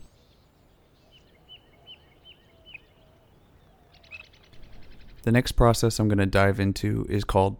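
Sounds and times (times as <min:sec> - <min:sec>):
birds singing a dawn chorus: 0:00.0 - 0:05.6
steady hissy outdoor background: 0:00.0 - 0:07.5
speech: 0:05.2 - 0:07.5.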